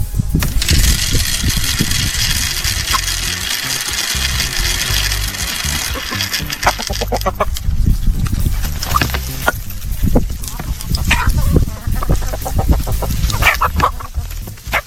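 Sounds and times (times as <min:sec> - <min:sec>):
automatic animal feeder motor churning and rumbling: 0:00.1 - 0:14.8
hissing rattle of automatic feeder scattering seed: 0:00.3 - 0:14.8.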